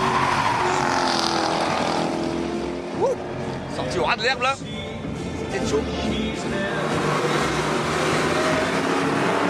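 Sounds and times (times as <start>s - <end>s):
sports car engine driven fast through corners on a race circuit: 0.0s - 3.8s, 5.9s - 9.4s
speech: 4.2s - 4.7s, 5.6s - 6.7s.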